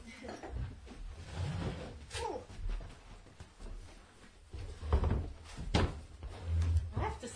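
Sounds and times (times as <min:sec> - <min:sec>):
chairs being fetched and moved: 0:00.5 - 0:03.1, 0:04.5 - 0:07.3
wooden knocks and thumps: 0:04.6 - 0:07.2.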